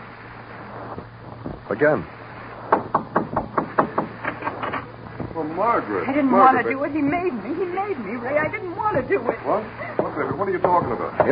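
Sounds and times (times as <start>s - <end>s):
speech: 1.7s - 2.2s, 5.5s - 11.2s
firm knocks on a door: 2.7s - 5.4s, 8.4s - 9.3s, 10.0s - 11.2s.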